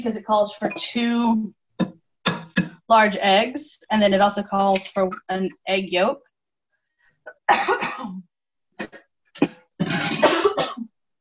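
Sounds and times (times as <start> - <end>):
speech: 0.0 - 1.9, 2.9 - 6.3, 7.2 - 9.5
person coughing after inhaling vinegar while cooking eggs: 7.3 - 8.2, 8.8 - 10.9.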